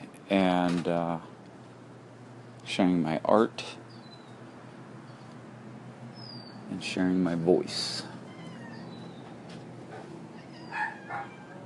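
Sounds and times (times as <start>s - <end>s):
faint hum: 0.0s - 11.6s
speech: 0.3s - 1.3s, 2.7s - 3.8s, 6.7s - 8.1s
cat meowing: 8.2s - 9.2s, 10.4s - 11.6s.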